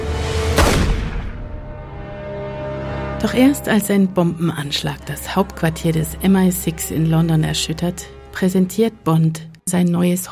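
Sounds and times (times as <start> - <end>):
action film music and effects: 0.0 - 10.3
gunfire from an action film: 0.5 - 1.6
speech: 3.2 - 10.3.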